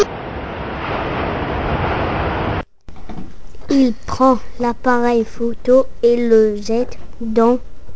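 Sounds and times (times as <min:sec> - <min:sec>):
ocean surf rushing: 0:00.0 - 0:02.6
speech: 0:03.7 - 0:07.7.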